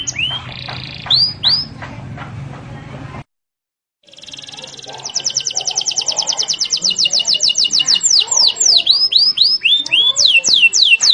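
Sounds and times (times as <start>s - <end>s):
canary song with trills and whistles: 0.0s - 1.8s, 4.0s - 11.1s.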